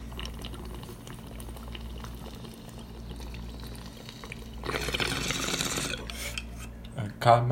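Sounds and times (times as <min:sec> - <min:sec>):
water bubbling through a bong: 0:00.0 - 0:07.0.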